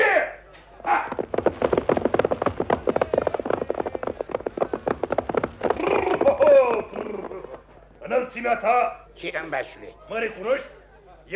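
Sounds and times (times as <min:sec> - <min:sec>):
horse hooves clip-clopping as a horse is ridden: 0:01.0 - 0:07.9
speech: 0:08.3 - 0:11.3.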